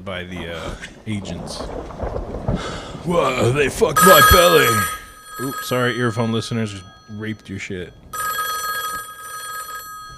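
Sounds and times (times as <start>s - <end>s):
speech: 0.0s - 8.0s
1990s telephone ringing with electronic trill: 4.0s - 10.1s.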